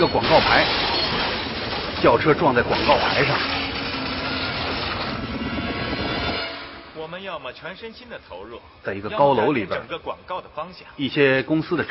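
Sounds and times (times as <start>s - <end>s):
speech: 0.0s - 0.8s, 2.0s - 3.6s, 7.2s - 11.8s
helicopter rotor beating while hovering: 2.2s - 7.0s
roar of helicopter engine and rushing air: 2.9s - 7.0s.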